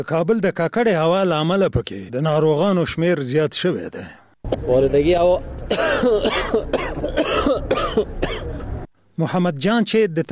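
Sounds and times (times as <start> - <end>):
speech: 0.0 - 8.5, 9.2 - 10.3
patient coughing from polluted air at a hospital in Kabul: 5.7 - 8.6.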